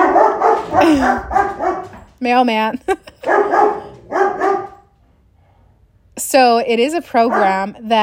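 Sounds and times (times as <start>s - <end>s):
dog barking: 0.0s - 2.1s, 3.2s - 4.9s, 7.2s - 7.7s
speech: 0.9s - 1.6s, 2.2s - 3.7s, 6.2s - 8.0s.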